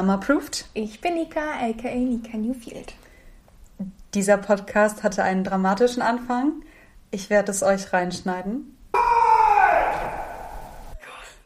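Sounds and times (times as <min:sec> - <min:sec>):
speech: 0:00.0 - 0:03.0, 0:03.8 - 0:08.8
sudden loud human scream: 0:09.0 - 0:11.0.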